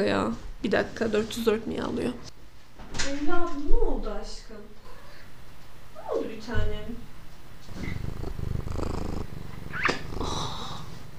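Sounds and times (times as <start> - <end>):
speech: 0.0 - 2.3, 3.0 - 4.7, 6.2 - 7.0
cat purring: 7.6 - 11.1.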